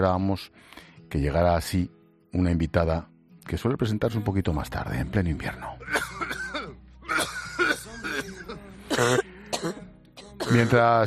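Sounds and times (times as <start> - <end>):
speech: 0.0 - 6.1, 9.0 - 9.8, 10.5 - 11.0
person coughing: 5.8 - 10.8
throat clearing: 5.8 - 10.8.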